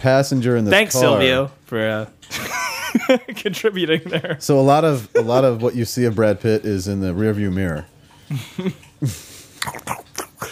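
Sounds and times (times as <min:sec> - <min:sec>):
speech: 0:00.0 - 0:10.0
dog licking and lapping water: 0:05.3 - 0:10.4.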